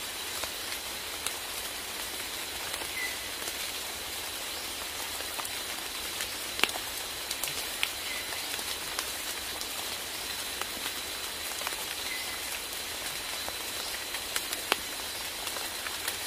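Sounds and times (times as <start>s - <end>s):
rainforest sounds: 0.0s - 16.2s.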